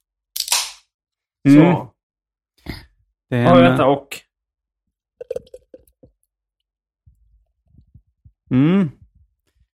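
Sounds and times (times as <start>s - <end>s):
beer cracked open with a fizzy snap: 0.4s - 0.8s
speech: 1.4s - 1.9s, 2.6s - 4.2s, 8.5s - 9.0s
beer pouring with bubbly glugging: 5.2s - 6.1s.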